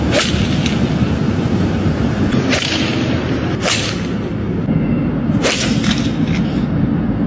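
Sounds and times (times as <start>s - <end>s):
golf clubs hitting golf balls: 0.0s - 1.1s, 2.3s - 4.4s, 5.4s - 6.6s
noisy background: 0.0s - 7.2s.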